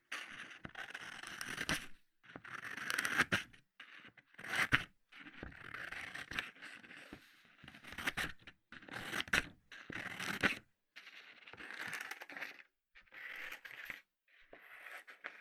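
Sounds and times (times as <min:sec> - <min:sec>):
scissors cutting drawing paper: 0:00.2 - 0:15.3.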